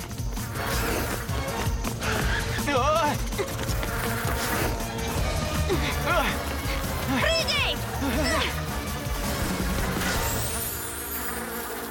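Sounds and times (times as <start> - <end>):
dense swarm of wasps buzzing: 0.0 - 11.8.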